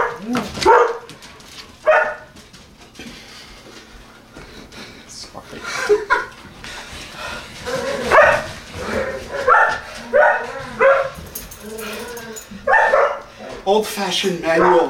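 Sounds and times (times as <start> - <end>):
collies barking and yipping: 0.0 - 2.4, 7.6 - 13.4, 14.4 - 14.8
laughter: 5.5 - 7.2
speech: 13.7 - 14.8.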